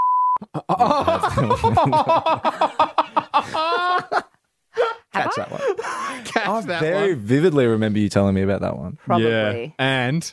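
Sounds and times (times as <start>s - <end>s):
short steady electronic censor bleep over a swear word: 0.0s - 0.4s
speech: 0.4s - 2.8s, 6.4s - 10.3s
people chuckling and laughing: 0.4s - 7.2s.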